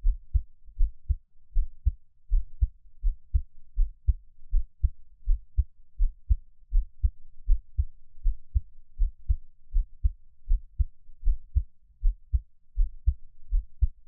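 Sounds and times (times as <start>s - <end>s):
calm heartbeat: 0.0s - 14.0s.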